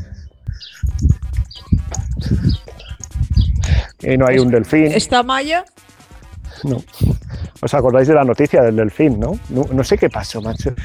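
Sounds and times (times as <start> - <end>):
small birds chirping: 0.0 - 5.4, 10.0 - 10.8
speech: 4.1 - 5.8, 6.6 - 10.8.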